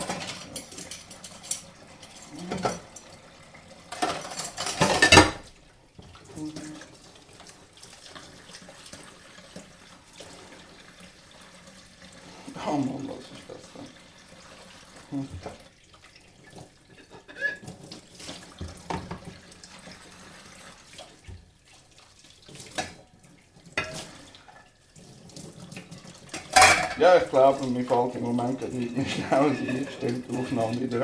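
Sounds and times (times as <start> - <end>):
soft clinks of dishes and cutlery: 0.0 - 1.8, 2.4 - 3.1, 3.9 - 5.5, 16.9 - 17.7, 26.3 - 27.2, 28.9 - 30.6
running water from a tap in a sink: 0.0 - 31.0
speech: 15.2 - 15.7, 27.0 - 31.0.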